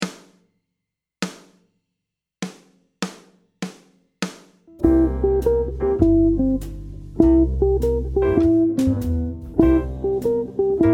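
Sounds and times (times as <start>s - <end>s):
jazz guitar arpeggio riff: 4.8s - 10.9s.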